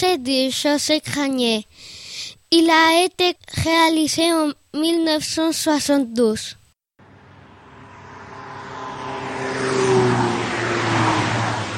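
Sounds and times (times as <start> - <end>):
speech: 0.0 - 6.6
cars accelerating and passing: 7.0 - 11.7
heavy street traffic rumbling: 7.0 - 11.7.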